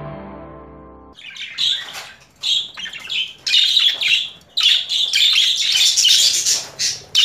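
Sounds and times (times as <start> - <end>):
female budgerigar warbling chatter with buzzy squawks and twittering: 1.2 - 7.2.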